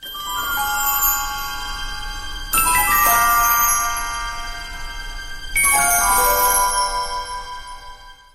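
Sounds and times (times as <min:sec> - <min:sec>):
twinkling sound: 0:00.0 - 0:08.3.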